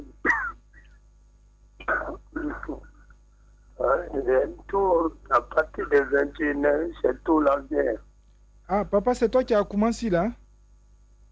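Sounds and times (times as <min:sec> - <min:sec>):
man coughing: 0:00.2 - 0:00.6, 0:01.8 - 0:02.9
speech: 0:04.1 - 0:08.1, 0:08.7 - 0:10.4.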